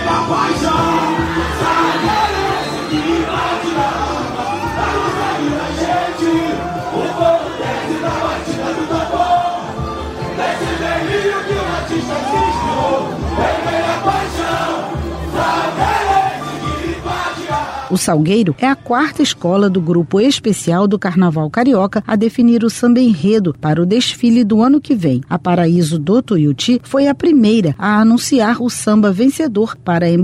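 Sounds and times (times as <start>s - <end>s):
large crowd of samba school supporters cheering and yelling: 0.0s - 18.0s
speech: 18.0s - 30.2s.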